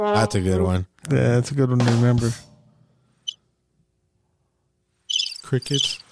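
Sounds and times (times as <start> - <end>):
speech: 0.2 - 2.5, 5.5 - 6.0
crickets chirping: 5.1 - 6.0.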